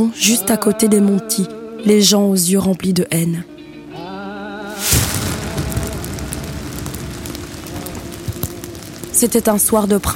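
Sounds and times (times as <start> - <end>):
speech: 0.0 - 3.5, 9.2 - 10.1
loud explosion: 4.7 - 9.8
sharp pops: 4.7 - 10.1.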